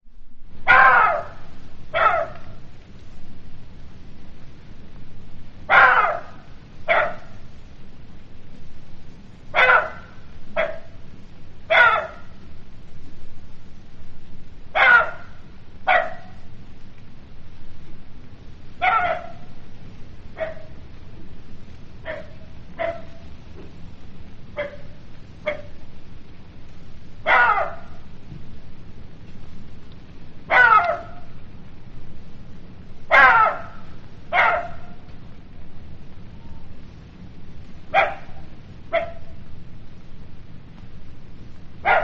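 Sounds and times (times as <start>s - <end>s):
jackals calling: 0.7s - 2.7s, 5.7s - 7.4s, 9.5s - 11.0s, 11.7s - 12.4s, 14.7s - 16.4s, 18.8s - 19.5s, 22.0s - 23.3s, 27.2s - 28.1s, 30.5s - 31.4s, 33.1s - 35.1s.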